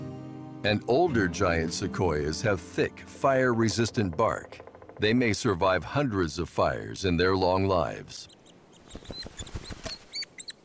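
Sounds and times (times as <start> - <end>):
speech: 0.6 - 8.4
white-headed woodpecker chicks begging at a nest in a fire-charred tree: 7.5 - 10.6.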